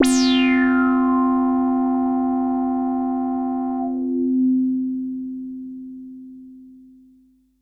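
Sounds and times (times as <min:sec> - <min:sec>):
synthesizer sound: 0:00.0 - 0:04.1.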